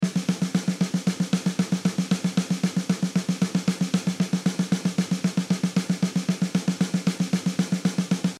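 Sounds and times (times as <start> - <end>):
16-beat rhythm for training: 0.0 - 8.3.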